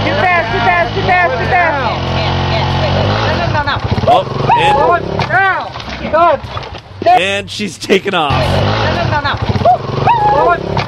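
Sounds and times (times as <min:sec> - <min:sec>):
motorbike engine revving: 0:00.0 - 0:05.6, 0:08.2 - 0:10.8
speech: 0:06.1 - 0:09.6.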